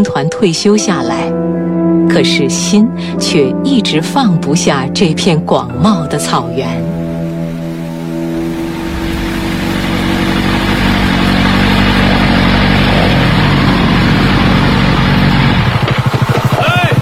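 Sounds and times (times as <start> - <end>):
speech: 0.0 - 1.4, 2.1 - 6.9
touring motorcycle engines revving on grassland near a national border: 6.9 - 16.9.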